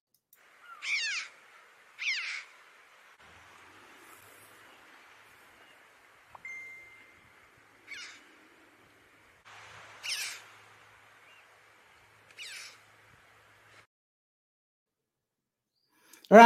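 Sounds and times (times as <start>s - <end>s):
red-billed chough calls: 0.4s - 13.0s
steady hiss outdoors: 0.4s - 13.9s
low hum outdoors: 1.3s - 13.8s
speech: 16.3s - 16.4s.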